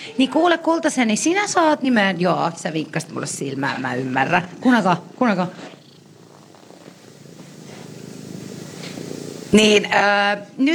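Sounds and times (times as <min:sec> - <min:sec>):
small cat purring: 0:00.0 - 0:10.7
speech: 0:00.1 - 0:05.7, 0:09.5 - 0:10.7.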